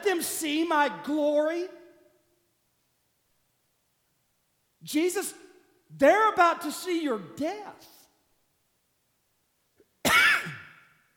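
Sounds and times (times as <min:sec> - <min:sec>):
speech: 0:00.1 - 0:01.8, 0:04.8 - 0:08.0
harsh cough into a headset microphone: 0:10.0 - 0:11.0.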